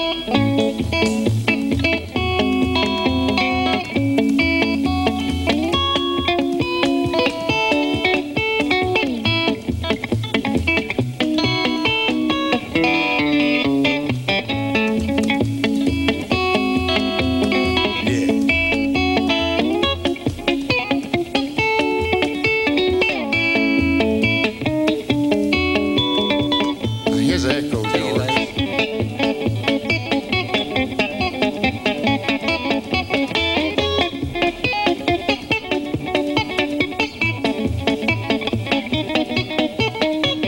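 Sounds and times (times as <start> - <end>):
electric guitar played through an echo pedal: 0.0 - 40.4.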